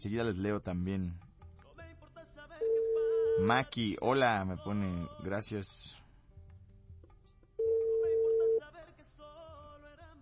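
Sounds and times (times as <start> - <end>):
speech: 0.0 - 1.3, 3.4 - 6.0
telephone ring tone while placing a call: 2.6 - 3.6, 7.6 - 8.6.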